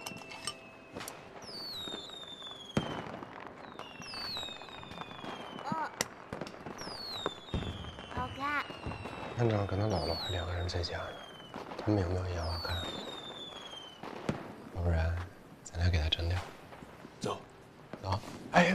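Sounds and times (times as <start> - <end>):
whistling rockets rising and falling: 0.0 - 14.8
fireworks bangs and crackles: 0.0 - 18.7.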